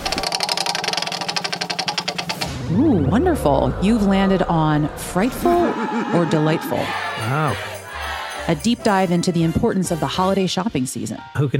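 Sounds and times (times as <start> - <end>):
game show prize wheel spinning with rapid clicking: 0.0 - 2.5
speech: 2.7 - 7.7, 8.5 - 11.5
laughter: 3.0 - 9.2.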